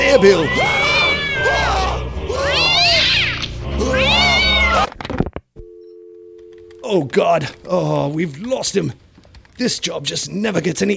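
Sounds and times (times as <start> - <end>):
speech: 0.2 - 0.8, 6.9 - 9.0, 9.6 - 10.9
cat yowling: 0.3 - 4.9.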